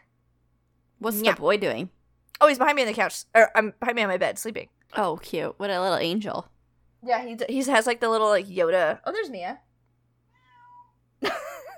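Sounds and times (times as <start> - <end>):
faint steady hum: 0.0 - 11.7
speech: 1.0 - 9.7, 11.2 - 11.5
cat meowing: 10.3 - 11.0.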